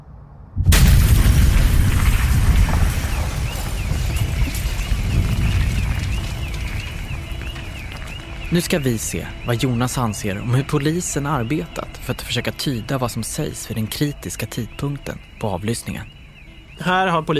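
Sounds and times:
bomb blast: 0:00.5 - 0:08.6
crackling debris: 0:00.6 - 0:15.5
speech: 0:08.5 - 0:16.2, 0:16.8 - 0:17.3.

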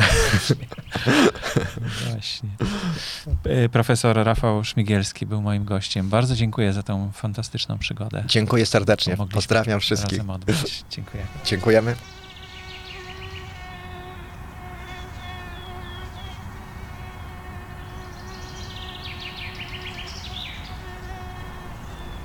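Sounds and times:
laughter: 0:00.0 - 0:03.3, 0:10.0 - 0:10.8
speech: 0:00.4 - 0:12.2
faint chirping: 0:10.6 - 0:22.2
mosquito wings whining: 0:11.0 - 0:22.2.

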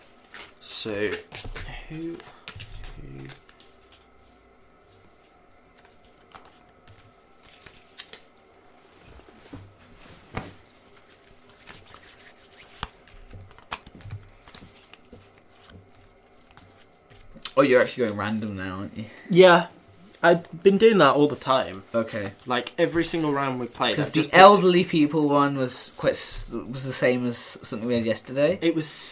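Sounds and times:
playing cards being dealt during a tabletop card game: 0:00.2 - 0:08.3, 0:10.4 - 0:18.2
speech: 0:00.8 - 0:02.4, 0:03.0 - 0:03.4, 0:17.6 - 0:29.0.

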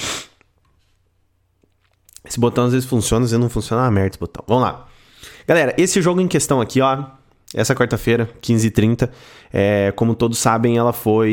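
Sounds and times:
loud sneeze: 0:00.0 - 0:00.5
speech: 0:02.2 - 0:11.3.

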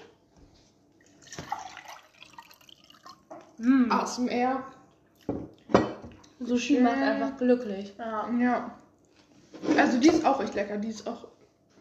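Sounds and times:
water pouring and dripping: 0:01.0 - 0:03.6
speech: 0:03.6 - 0:04.8, 0:06.4 - 0:08.8, 0:09.8 - 0:11.4.

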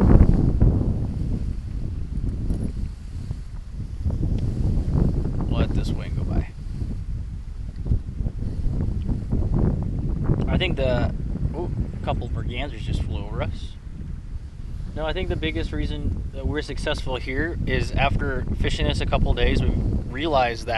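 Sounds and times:
strong gust of wind buffeting the microphone: 0:00.0 - 0:20.7
faint outdoor sounds: 0:10.4 - 0:20.7
speech: 0:12.0 - 0:13.8, 0:15.0 - 0:20.7.

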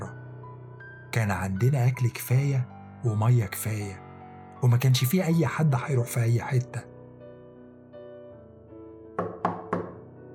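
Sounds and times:
speech: 0:01.2 - 0:04.0, 0:04.6 - 0:06.9
knocking on a door: 0:09.2 - 0:10.1.

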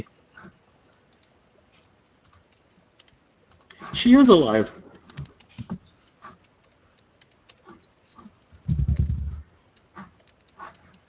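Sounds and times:
typing on a computer keyboard: 0:00.9 - 0:01.4, 0:02.1 - 0:03.8, 0:05.0 - 0:09.2, 0:09.7 - 0:11.0
speech: 0:03.9 - 0:04.8.

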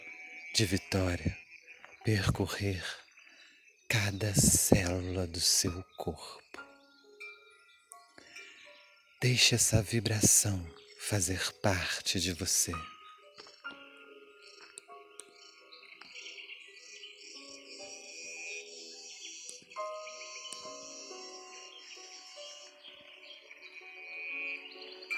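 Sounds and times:
cicadas buzzing: 0:00.0 - 0:06.4, 0:08.3 - 0:25.1
speech: 0:00.6 - 0:01.4, 0:02.0 - 0:03.0, 0:03.9 - 0:06.6, 0:09.2 - 0:12.9.

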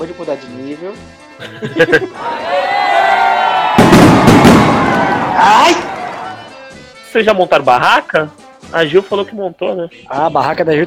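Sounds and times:
speech: 0:00.0 - 0:02.7, 0:07.1 - 0:10.8
laughter: 0:01.4 - 0:03.2
crowd shouting and cheering: 0:02.1 - 0:06.7
gunshots fired into the air over a crowd: 0:03.7 - 0:06.2.

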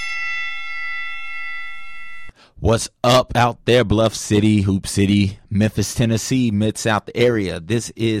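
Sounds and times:
bell ringing with a bright metallic tone: 0:00.0 - 0:02.4
speech: 0:02.6 - 0:08.1.

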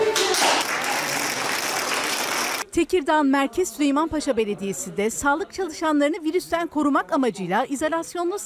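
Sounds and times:
group applauding as recovered coronavirus patients leave hospital: 0:00.2 - 0:02.6
speech: 0:02.8 - 0:08.4.

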